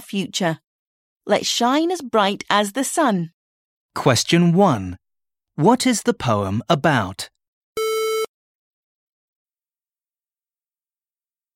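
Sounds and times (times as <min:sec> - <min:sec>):
speech: 0:00.1 - 0:00.6, 0:01.3 - 0:03.4, 0:04.0 - 0:05.0, 0:05.6 - 0:07.3
exam answer-prompt electronic beep: 0:07.8 - 0:08.3.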